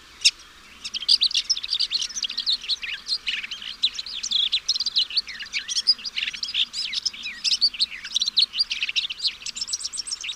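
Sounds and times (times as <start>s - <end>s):
bird song used for training pet birds: 0.0s - 10.3s.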